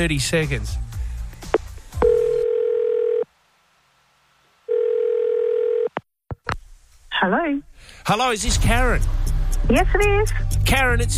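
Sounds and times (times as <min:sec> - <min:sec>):
speech: 0:00.0 - 0:00.9, 0:07.2 - 0:11.1
steady electronic telephone ringing tone: 0:02.0 - 0:03.3, 0:04.7 - 0:06.0.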